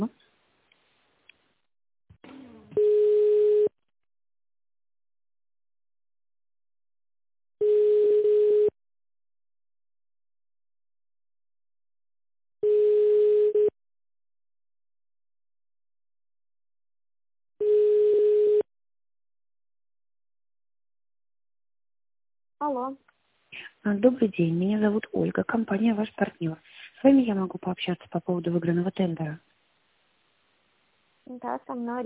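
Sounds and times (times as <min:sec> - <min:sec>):
telephone ringback tone while a call is transferred: 0:02.8 - 0:03.7, 0:07.6 - 0:08.7, 0:12.6 - 0:13.7, 0:17.6 - 0:18.7
speech: 0:22.6 - 0:29.5, 0:31.3 - 0:32.0.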